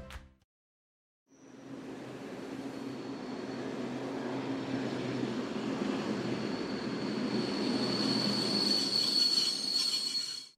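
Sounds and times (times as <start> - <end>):
train rumbling along: 1.7 - 9.9
train wheels squealing on rails: 2.4 - 10.5.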